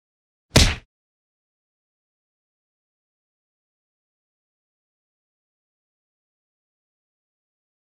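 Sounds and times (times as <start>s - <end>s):
slap in the face: 0.6s - 0.8s.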